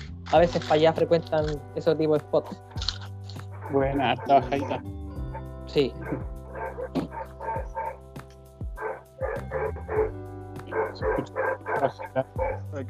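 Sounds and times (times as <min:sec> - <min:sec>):
speech: 0:00.3 - 0:02.8, 0:03.7 - 0:05.0, 0:05.7 - 0:07.1, 0:11.0 - 0:12.8
dogs barking: 0:02.4 - 0:08.2, 0:08.8 - 0:12.7.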